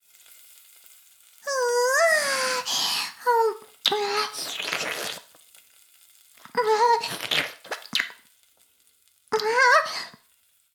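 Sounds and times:
fellatio audio ASMR: 1.4 - 5.4, 6.4 - 8.3, 9.4 - 10.2.

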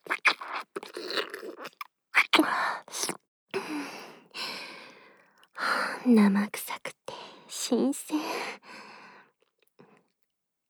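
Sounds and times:
person slurping up fluid: 0.0 - 3.2
speech: 6.1 - 6.6, 7.7 - 8.3.

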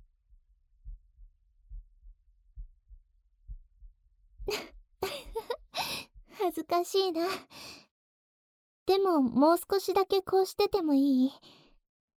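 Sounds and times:
heartbeat pounding from nervousness: 0.8 - 6.3
speech: 6.6 - 7.6, 8.9 - 11.6.

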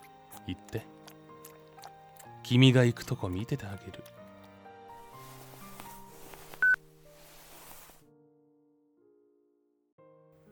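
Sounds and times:
speech: 0.5 - 0.9, 2.5 - 4.2
electronic phone button tones as a phone call is hung up: 6.6 - 6.8.

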